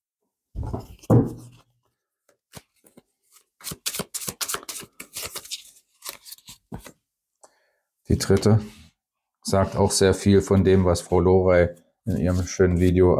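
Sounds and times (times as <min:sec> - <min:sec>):
speech: 0:00.8 - 0:01.6, 0:08.1 - 0:08.8, 0:09.5 - 0:13.1
tarot card deck rustling in handfuls: 0:02.3 - 0:07.0.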